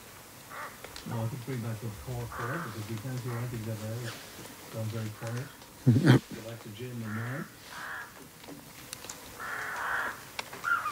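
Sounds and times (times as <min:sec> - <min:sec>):
rooks cawing harshly: 0:00.4 - 0:01.0, 0:02.0 - 0:04.0, 0:06.9 - 0:08.3, 0:09.3 - 0:10.9
speech: 0:01.0 - 0:07.9.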